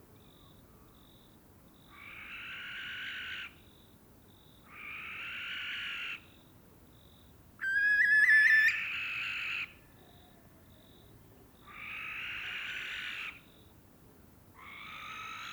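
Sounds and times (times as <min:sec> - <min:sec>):
barn owl soft high pips: 0:07.6 - 0:08.9
barn owl pair screeching in courtship flight: 0:07.6 - 0:09.3.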